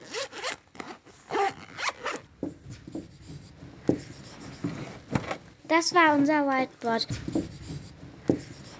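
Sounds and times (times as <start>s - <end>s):
zipper of a pencil case being pulled open: 0.0s - 2.3s
speech: 5.7s - 7.5s.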